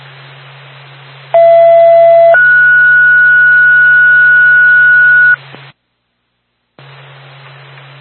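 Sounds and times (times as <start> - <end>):
loud two-tone ambulance dispatch page: 1.4 - 5.4.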